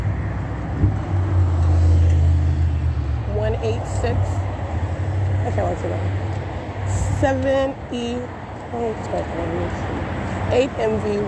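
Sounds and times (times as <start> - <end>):
car passing on a boulevard with low engine rumble: 0.0 - 6.2
speech: 5.5 - 6.3, 7.2 - 11.2.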